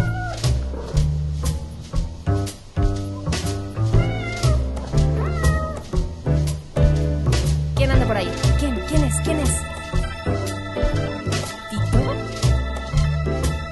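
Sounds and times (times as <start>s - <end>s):
cat meowing: 0.0s - 0.6s, 3.9s - 6.0s
rhythmic musical backing with a deep bass pulse: 0.0s - 13.6s.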